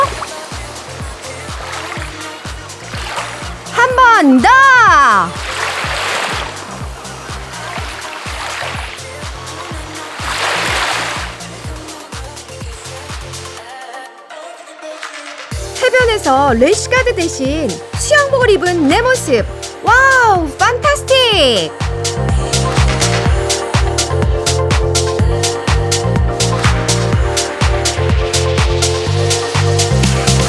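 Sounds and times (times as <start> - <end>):
ocean waves washing ashore: 0.0 - 12.3
thumping music beat: 0.0 - 30.4
person calling out: 3.7 - 5.5, 15.8 - 21.8
speech: 4.2 - 5.4, 16.2 - 19.6, 20.2 - 22.4.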